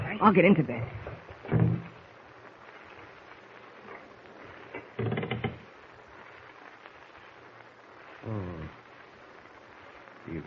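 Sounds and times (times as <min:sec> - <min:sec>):
speech: 0:00.2 - 0:01.6
faint creaking: 0:00.8 - 0:10.3
door rattled by someone trying to open it: 0:05.0 - 0:05.6.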